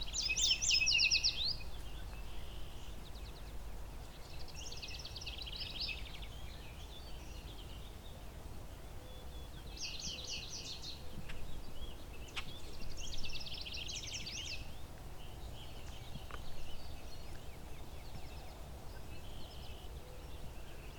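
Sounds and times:
yellow warbler singing: 0.0 - 20.9.

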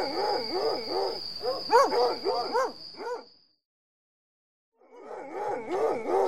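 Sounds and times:
several hounds barking and baying: 0.0 - 3.3, 4.8 - 6.2.

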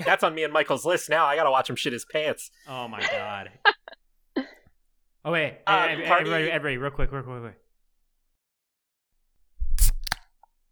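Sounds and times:
laughter: 0.0 - 0.4, 2.7 - 4.0
speech: 0.0 - 3.7, 5.2 - 7.6
drink can cracked open with metallic pop and fizzing hiss: 9.8 - 10.2.

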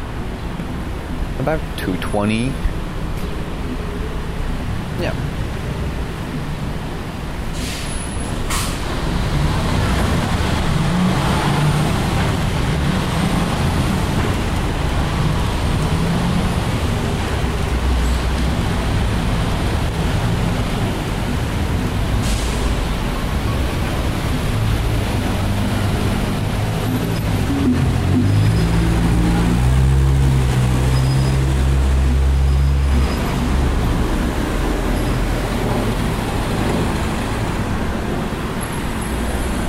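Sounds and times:
cars and heavier vehicles driving past on a city street: 0.0 - 39.6
road noise: 0.0 - 39.6
speech: 1.4 - 2.7, 5.0 - 5.4
air brake hiss: 7.5 - 8.9, 22.2 - 22.8.

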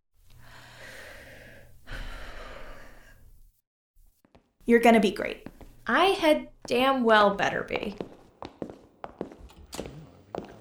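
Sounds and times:
person taking a deep breath: 0.4 - 3.3
speech: 4.7 - 8.1.

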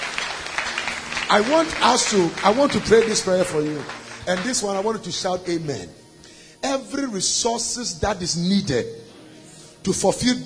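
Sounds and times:
audience applauding: 0.0 - 5.5
speech: 1.3 - 6.0, 6.6 - 9.2, 9.8 - 10.4.

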